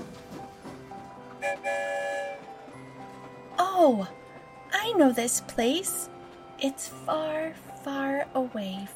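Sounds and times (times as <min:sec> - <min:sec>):
train rumbling through a tunnel: 0:00.0 - 0:08.9
loud sustained train whistle: 0:01.3 - 0:02.8
speech: 0:01.4 - 0:02.0, 0:03.8 - 0:04.2, 0:04.8 - 0:08.9.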